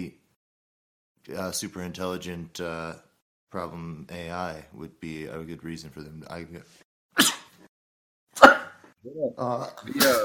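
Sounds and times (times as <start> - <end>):
speech: 1.2 - 7.3, 9.0 - 10.2
person sneezing: 7.2 - 7.7, 8.4 - 8.8.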